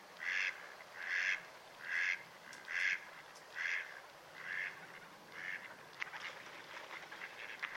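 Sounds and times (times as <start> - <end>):
background hiss: 0.0 - 7.7
mallard quacking: 0.2 - 6.4.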